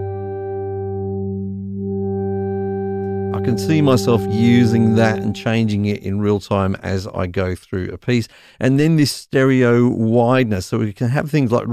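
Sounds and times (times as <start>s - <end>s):
buzzy synthesizer drone with filter adjusted in real time: 0.0s - 6.0s
speech: 3.4s - 11.7s.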